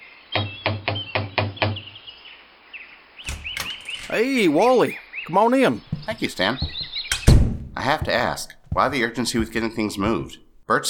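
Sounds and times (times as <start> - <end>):
faint birds chirping outdoors: 0.0 - 10.6
speech: 4.1 - 6.8, 7.8 - 10.8
knocking on a wooden door: 5.9 - 9.7.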